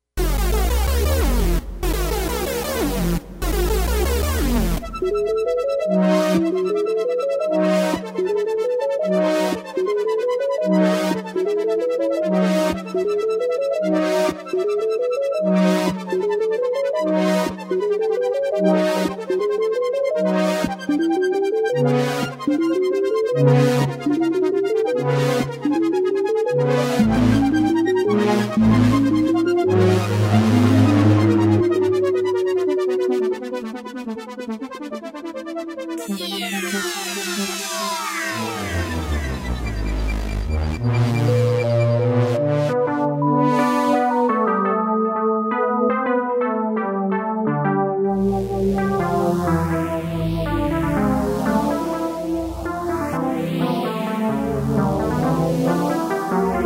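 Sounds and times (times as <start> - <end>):
Korg synthesizer: 0.0 - 56.6.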